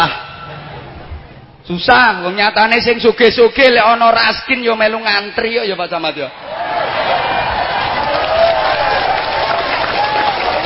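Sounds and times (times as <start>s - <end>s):
speech: 1.7s - 7.2s
audience cheering: 6.4s - 10.6s
audience clapping: 7.2s - 10.6s.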